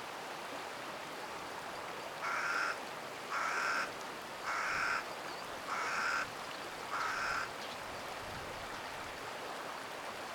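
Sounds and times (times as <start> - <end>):
stream rushing in the middle reaches of the Tama River, Japan: 0.0 - 10.3
crow cawing by the Tama River in Japan: 2.2 - 5.0, 5.7 - 6.3, 6.9 - 7.5.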